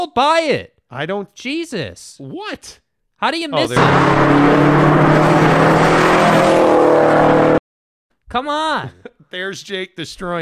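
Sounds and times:
speech: 0:00.0 - 0:07.6, 0:08.3 - 0:10.4
car engine revving in a played video: 0:03.6 - 0:07.6.

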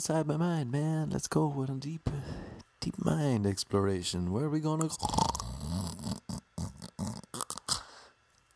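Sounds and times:
speech: 0:00.0 - 0:05.5
person imitating snoring: 0:04.9 - 0:08.1.

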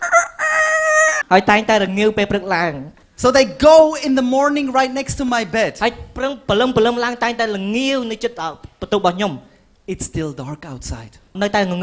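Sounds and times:
voice imitating two roosters crowing before dawn: 0:00.0 - 0:01.2
speech: 0:01.3 - 0:11.8.

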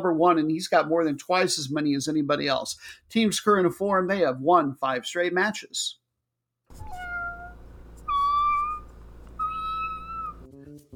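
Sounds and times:
speech: 0:00.0 - 0:06.0
cats meowing: 0:06.7 - 0:10.5
steady low hum: 0:06.7 - 0:10.5.

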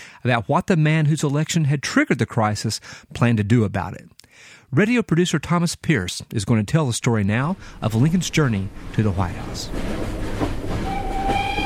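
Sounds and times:
speech: 0:00.2 - 0:10.9
train rumbling along the rails with a rhythmic clickety-clack: 0:07.7 - 0:11.6
faint sustained whistle-like tone: 0:10.8 - 0:11.6.

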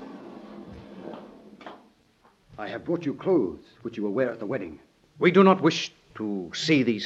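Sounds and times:
heavy dungeon door grinding open: 0:00.0 - 0:02.0
speech: 0:02.6 - 0:07.0.

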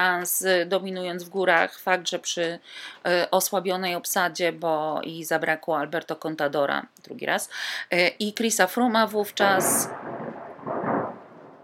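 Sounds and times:
speech: 0:00.0 - 0:10.1
rolling thunder rumble: 0:09.5 - 0:11.6.

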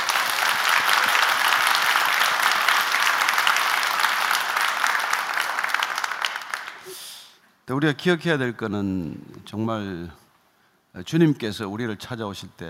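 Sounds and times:
large group applauding: 0:00.0 - 0:06.9
speech: 0:07.7 - 0:10.2, 0:10.9 - 0:12.6.

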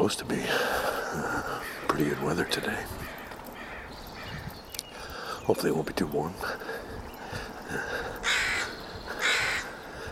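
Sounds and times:
speech: 0:00.0 - 0:03.0, 0:05.5 - 0:08.2
crow cawing: 0:00.9 - 0:04.5, 0:07.3 - 0:10.1.

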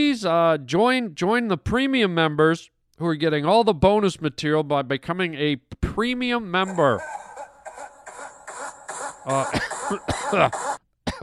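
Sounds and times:
speech: 0:00.0 - 0:07.2, 0:09.2 - 0:11.2
harsh raspy coughs: 0:09.3 - 0:11.2.

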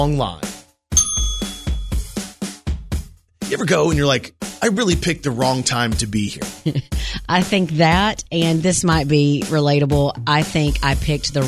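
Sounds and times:
speech: 0:00.0 - 0:00.5, 0:03.5 - 0:11.4
hand bell ringing: 0:01.0 - 0:02.2.

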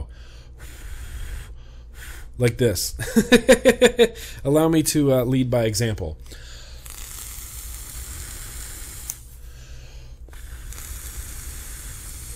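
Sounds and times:
speech: 0:02.4 - 0:06.5
laughter: 0:03.0 - 0:04.2
vape coil fired with juice-soaked cotton sizzling: 0:06.7 - 0:09.4, 0:10.3 - 0:12.3.

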